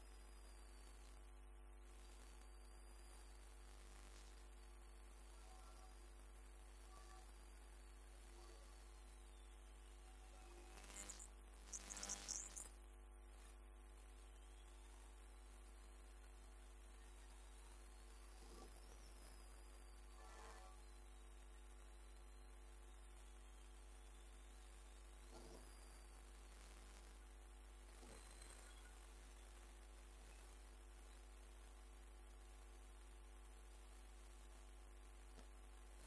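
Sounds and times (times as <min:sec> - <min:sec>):
faint wavering high whine: 0:00.0 - 0:36.0
electromagnetic field detector electrical hum with buzzing tones and hiss: 0:08.2 - 0:12.7
electromagnetic field detector crackling bursts: 0:10.8 - 0:12.7.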